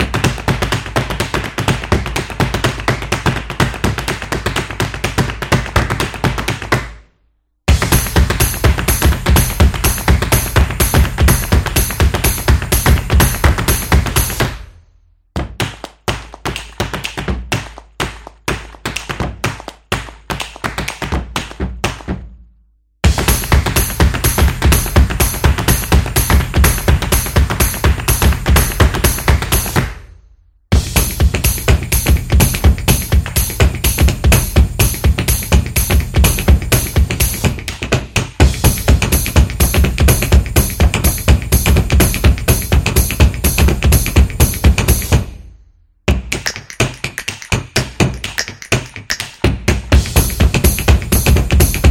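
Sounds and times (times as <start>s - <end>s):
energetic drum percussion: 0.0s - 6.8s, 7.7s - 14.8s, 15.4s - 22.4s, 23.0s - 30.1s, 30.7s - 45.5s, 46.1s - 51.9s.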